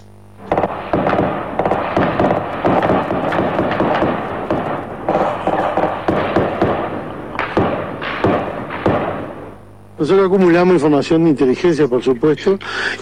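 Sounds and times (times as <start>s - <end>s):
rapid gunshots in overlapping bursts: 0.4s - 9.6s
speech: 10.0s - 13.0s.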